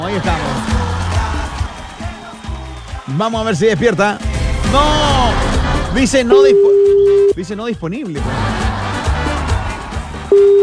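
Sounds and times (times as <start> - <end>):
speech: 0.0 - 0.8, 3.1 - 8.6, 10.3 - 10.6
laughter: 0.0 - 2.9, 8.2 - 10.4
WhatsApp call ringing tone: 6.3 - 7.4, 10.3 - 10.6.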